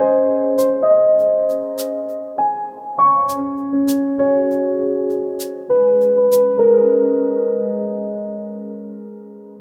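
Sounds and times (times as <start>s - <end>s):
relaxing ambient lofi piano: 0.0s - 9.5s.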